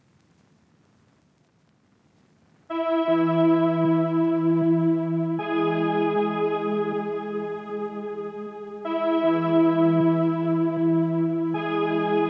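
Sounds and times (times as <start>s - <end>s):
synth melody loop in C sharp minor: 2.7s - 12.2s.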